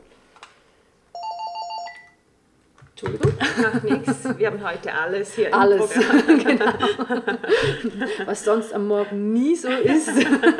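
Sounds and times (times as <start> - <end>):
telephone ringing with a bright electronic trill: 1.1 - 2.3
laughter: 3.0 - 10.5
speech: 3.0 - 10.5.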